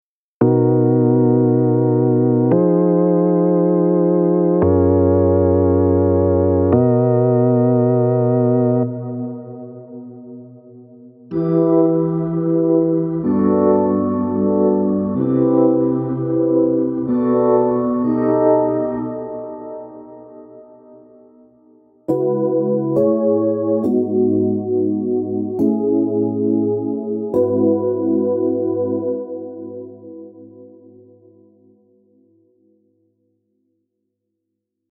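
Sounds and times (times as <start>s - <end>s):
chords: 0.4s - 31.9s.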